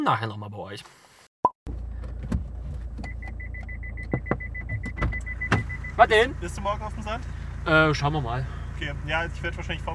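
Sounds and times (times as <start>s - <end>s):
speech: 0.0s - 1.0s, 6.0s - 9.9s
short beep of a car being switched off: 3.0s - 6.3s.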